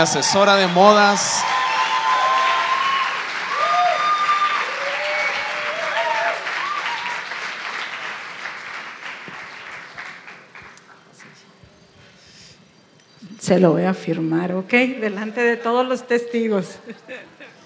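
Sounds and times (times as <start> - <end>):
speech: 0.0 - 1.6, 13.5 - 17.6
cheers and whistles: 0.0 - 10.3
audience applause: 0.0 - 11.4
laughter: 15.1 - 17.6.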